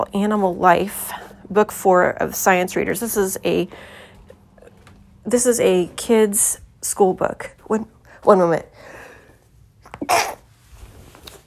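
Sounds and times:
speech: 0:00.0 - 0:04.0, 0:05.2 - 0:08.9, 0:10.1 - 0:10.4
person sneezing with inhaling buildup: 0:09.9 - 0:10.5.

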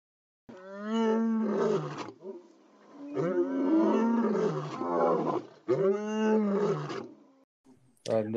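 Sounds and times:
lion roaring: 0:00.5 - 0:07.2
speech: 0:08.2 - 0:08.3.

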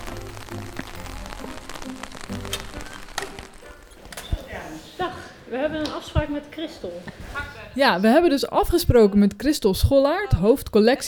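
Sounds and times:
rain on a hard surface outdoors in Leiden Netherlands: 0:00.0 - 0:04.0
speech: 0:05.0 - 0:11.0.

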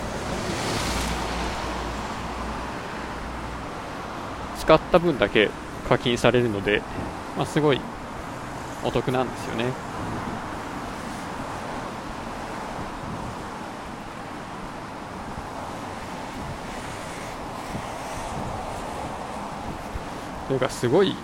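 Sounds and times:
road and wind noise inside a moving car: 0:00.0 - 0:21.2
speech: 0:04.6 - 0:07.9, 0:08.8 - 0:10.3, 0:20.5 - 0:21.2.

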